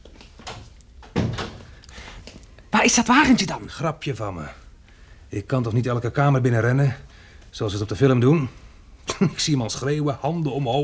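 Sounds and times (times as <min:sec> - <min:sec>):
door shutting with a solid thud: 0:00.4 - 0:01.7
speech: 0:02.8 - 0:04.6, 0:05.3 - 0:10.8.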